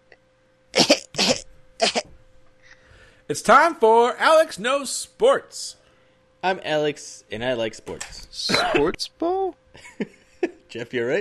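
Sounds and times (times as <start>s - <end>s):
faint steady hum: 0.0s - 11.2s
person coughing harshly: 0.8s - 2.1s, 8.5s - 9.0s
speech: 3.3s - 5.8s, 6.4s - 11.2s.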